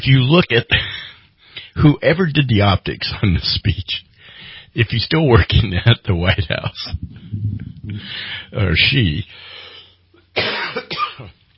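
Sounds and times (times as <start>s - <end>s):
speech: 0.0s - 0.9s, 1.8s - 4.1s, 4.7s - 9.6s, 10.4s - 11.4s
person with a sinus infection coughing: 10.4s - 11.4s.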